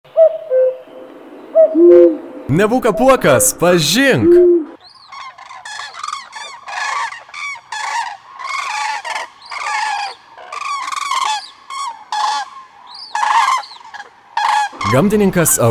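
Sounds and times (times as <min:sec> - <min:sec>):
common cranes calling while flying over: 0:00.1 - 0:03.4, 0:04.6 - 0:15.0
speech: 0:01.8 - 0:04.6, 0:15.0 - 0:15.6.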